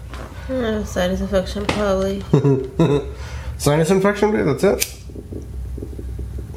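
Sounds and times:
speech: 0.5s - 4.9s
laughter: 2.3s - 3.1s
low gurgling stomach rumble after the speaker hits their stomach: 5.0s - 6.5s.

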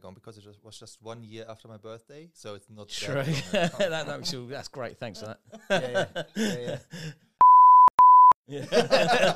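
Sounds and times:
speech: 0.1s - 7.3s, 8.5s - 9.3s
laughter: 3.2s - 4.2s, 5.6s - 7.1s, 8.5s - 9.3s
censor bleep tone: 7.4s - 8.4s.

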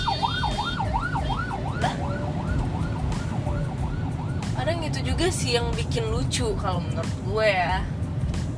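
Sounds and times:
ambulance siren wailing: 0.0s - 5.0s
traffic rumble: 0.0s - 8.5s
speech: 5.0s - 8.0s.

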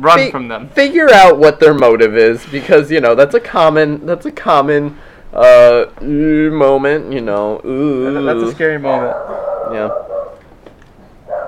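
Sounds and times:
speech: 0.0s - 10.0s
dogs barking: 8.9s - 10.4s, 11.2s - 11.4s.

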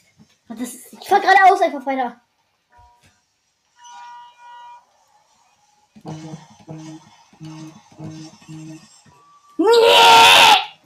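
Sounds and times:
speech: 0.5s - 2.2s, 6.0s - 10.6s
person screaming: 9.6s - 10.8s.

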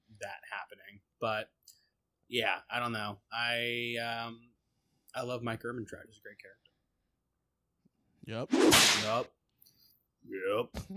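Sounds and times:
speech: 0.2s - 1.6s, 2.3s - 4.5s, 5.2s - 6.7s, 8.2s - 9.4s, 10.2s - 10.9s
voice imitating whip crack: 8.5s - 9.2s.

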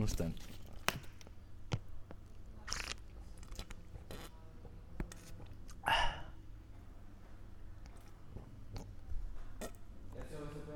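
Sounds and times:
speech: 0.0s - 0.6s
faint steady hum: 0.0s - 10.7s
ASMR mouth noises close to microphone: 2.6s - 4.3s, 7.8s - 9.0s.

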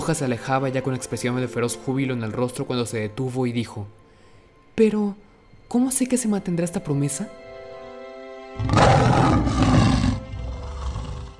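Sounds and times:
speech: 0.0s - 4.0s, 4.8s - 7.4s, 8.6s - 9.6s
lion roaring with deep rumbling growls: 8.6s - 11.3s.

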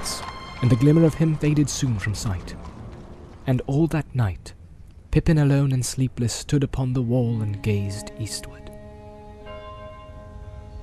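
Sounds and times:
low rumbling background: 0.0s - 10.8s
speech: 0.6s - 2.7s, 3.4s - 4.6s, 5.2s - 8.6s
church bells ringing: 7.4s - 10.8s.

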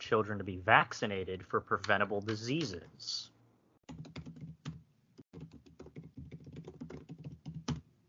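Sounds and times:
speech: 0.1s - 4.2s
rapid typing on a computer keyboard: 3.9s - 7.8s.

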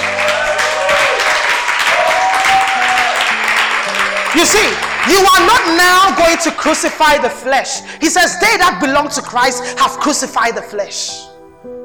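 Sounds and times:
audience clapping at a church sermon: 0.0s - 7.1s
speech: 4.4s - 11.4s.

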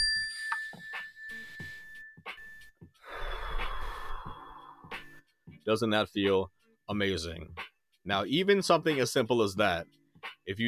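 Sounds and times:
mindfulness bell ringing: 0.0s - 2.5s
long audible inhale of breath: 3.0s - 5.1s
speech: 5.7s - 10.6s.

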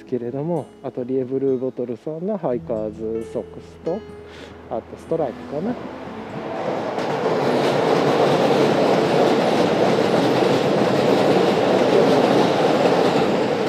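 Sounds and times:
speech: 0.0s - 6.1s
local line train passing: 4.3s - 13.6s.

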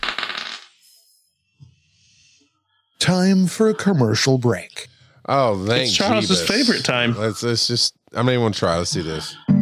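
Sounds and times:
dice tumbling across a hard surface: 0.0s - 0.8s
speech: 3.0s - 9.5s.

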